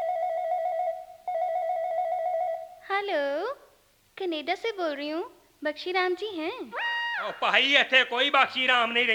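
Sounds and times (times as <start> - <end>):
newly installed landline telephone ringing with a warbling electronic tone: 0.0 - 2.8
speech: 3.0 - 9.1.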